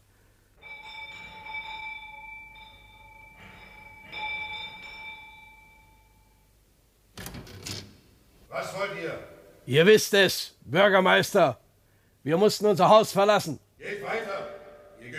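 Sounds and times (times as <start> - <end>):
doorbell chiming: 0.6 - 6.5, 14.2 - 15.1
speech: 8.6 - 11.6, 12.2 - 13.6.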